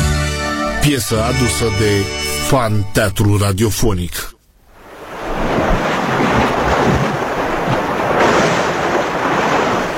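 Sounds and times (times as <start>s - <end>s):
speech: 0.8s - 4.3s
sea surf washing onto the shore: 4.7s - 9.9s
wind noise: 4.7s - 9.9s.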